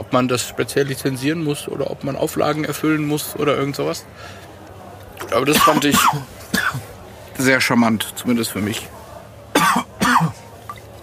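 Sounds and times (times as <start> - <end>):
speech: 0.1 - 4.5, 5.3 - 9.0
sharp coughs: 5.5 - 6.9, 9.5 - 10.5.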